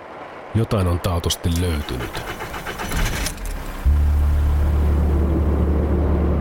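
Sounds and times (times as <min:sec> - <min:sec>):
speech: 0:00.6 - 0:03.1
car engine droning: 0:01.8 - 0:06.3
car tires splashing through a puddle: 0:01.8 - 0:06.3.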